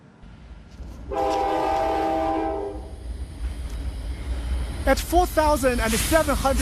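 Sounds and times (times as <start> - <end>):
train on the highest and longest railway rumbling past in Xizang: 0.0 - 6.5
speech: 1.1 - 1.4, 4.9 - 6.5
loud sustained train horn blast on the plateau in Xizang: 1.1 - 2.9.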